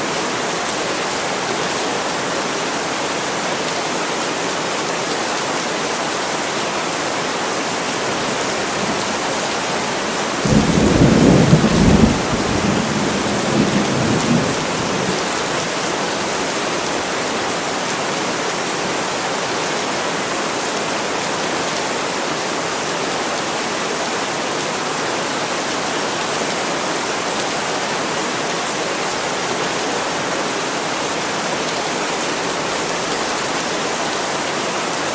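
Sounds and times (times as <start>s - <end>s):
heavy rain on a roof in a forest at night: 0.0s - 35.1s
low rumble of thunder: 10.5s - 14.8s.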